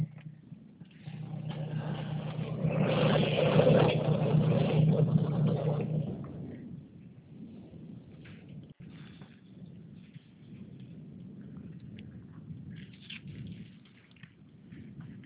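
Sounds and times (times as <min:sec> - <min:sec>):
car engine idling with a low constant hum: 0:00.0 - 0:06.9.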